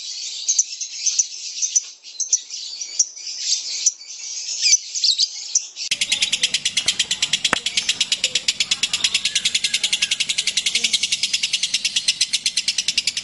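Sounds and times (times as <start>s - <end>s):
kept lovebird singing a long rapid rattling trill: 5.9s - 13.2s.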